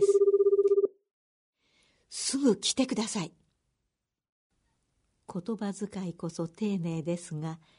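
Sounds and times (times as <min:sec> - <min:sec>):
telephone ringing with electronic trill: 0:00.0 - 0:00.9
speech: 0:02.4 - 0:03.4, 0:05.3 - 0:07.7.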